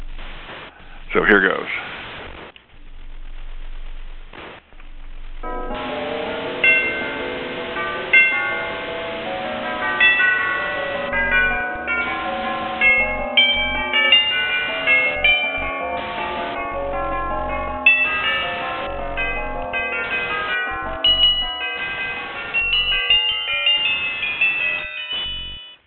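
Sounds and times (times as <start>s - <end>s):
speech: 1.2s - 2.0s
overlapping chimes at many different pitches: 5.4s - 25.8s.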